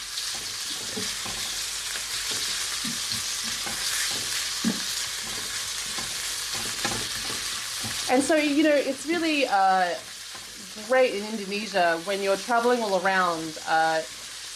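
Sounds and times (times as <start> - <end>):
bite-sized chicken pieces frying in a pan: 0.0 - 14.5
scraping and knocking of stirring chicken in a pan: 0.4 - 8.1
speech: 8.1 - 10.1, 10.8 - 14.2.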